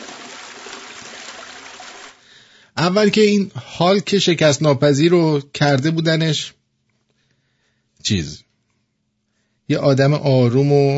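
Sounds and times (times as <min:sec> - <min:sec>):
rushing running water: 0:00.0 - 0:02.2
speech: 0:02.8 - 0:06.6, 0:08.0 - 0:08.4, 0:09.7 - 0:10.9.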